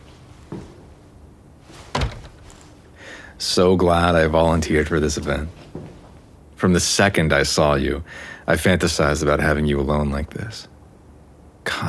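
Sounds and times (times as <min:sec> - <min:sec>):
door being pushed shut: 0:01.9 - 0:02.7
speech: 0:03.4 - 0:05.6, 0:06.6 - 0:10.7.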